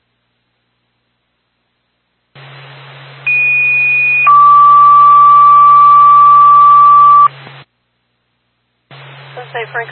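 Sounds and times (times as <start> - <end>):
constant radio static hiss: 2.4 - 4.5, 6.7 - 7.7, 8.8 - 9.9
low hum: 2.4 - 7.5
fire department dispatch paging tone over radio: 3.3 - 7.3.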